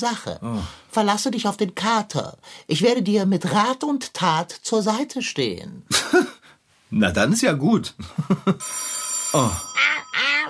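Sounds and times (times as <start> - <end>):
speech: 0.0 - 6.3, 6.9 - 10.4
telephone ringing with a high electronic trill: 8.6 - 10.4.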